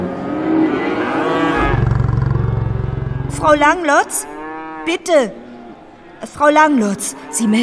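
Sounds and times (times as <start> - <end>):
nervous cows lowing: 0.0 - 7.6
low rumbling pulse: 1.5 - 5.1
speech: 3.4 - 5.4, 6.2 - 7.6.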